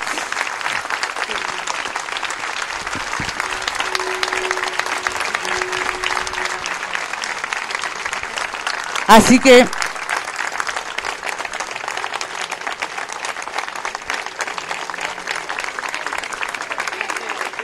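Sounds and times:
crowd applauding at an open-microphone protest gathering: 0.0s - 17.6s
faint sustained tone: 1.3s - 9.1s
speech: 9.1s - 9.8s.

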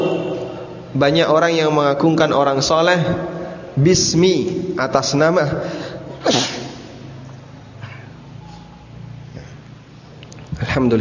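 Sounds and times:
speech: 0.9s - 6.6s, 10.8s - 11.0s
sneeze: 6.2s - 7.0s.

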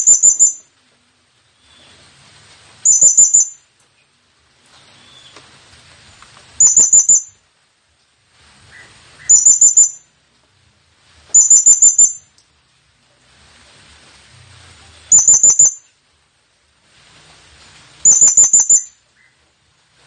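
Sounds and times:
blue-crowned hanging parrot lure call of trilled high chirps: 0.0s - 0.7s, 2.8s - 3.7s, 6.6s - 7.4s, 8.7s - 10.1s, 11.4s - 12.3s, 15.1s - 15.9s, 18.0s - 19.4s
faint background hiss: 0.0s - 20.0s.

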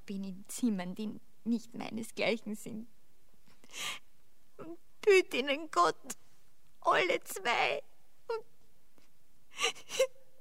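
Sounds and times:
speech: 0.1s - 3.0s, 3.7s - 4.0s, 4.6s - 6.2s, 6.8s - 8.5s, 9.6s - 10.3s
stage comedy performer starting to cry: 9.6s - 10.3s.

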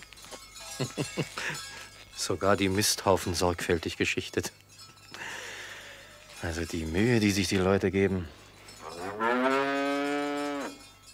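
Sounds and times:
speech: 0.8s - 4.6s, 6.4s - 8.4s
cow mooing on a farm in the countryside on a summer evening: 8.8s - 10.8s.

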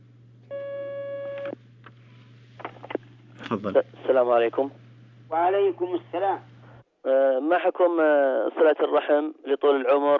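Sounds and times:
telephone line tone as a phone-in call connects: 0.5s - 1.6s
speech: 3.5s - 10.1s.

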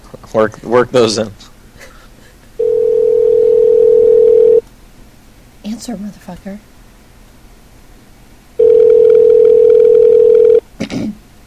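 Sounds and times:
speech: 0.1s - 1.4s, 5.8s - 6.7s
ringback tone on an outgoing phone call: 2.6s - 4.6s, 8.6s - 10.6s.

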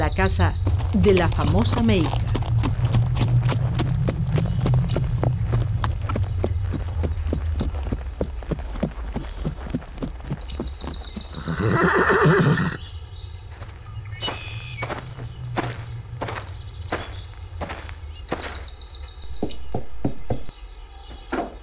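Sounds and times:
horse hooves clip-clopping as a rider sets off: 0.0s - 12.6s, 13.4s - 19.0s
speech: 0.1s - 2.3s
horse whinnying loud and high: 11.3s - 12.8s.

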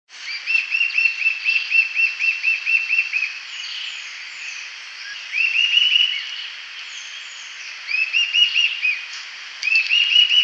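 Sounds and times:
steady background hiss: 0.1s - 10.4s
Sirystes sibilator eastern sirystes calling: 9.1s - 10.4s.

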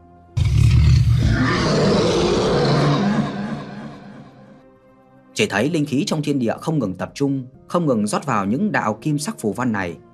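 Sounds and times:
tiger roar and dragon chant sound effect: 0.4s - 4.5s
speech: 5.4s - 10.1s.

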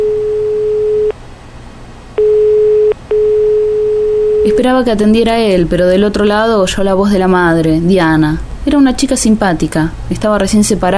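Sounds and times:
telephone ringing tone on a wall phone: 0.0s - 1.1s, 2.2s - 4.6s
speech: 4.5s - 10.9s.

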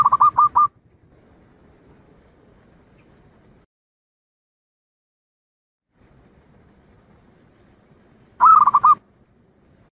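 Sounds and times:
zebra dove soft throaty coos: 0.0s - 0.7s, 8.4s - 9.0s.

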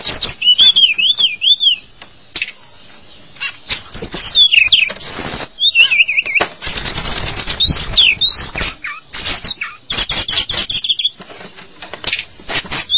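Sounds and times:
bird whistling and trilling: 0.0s - 1.9s, 3.4s - 5.0s, 5.6s - 11.2s, 12.5s - 12.9s
sharp rapid clicking and rattle-like bursts: 6.6s - 8.7s, 9.3s - 10.8s.

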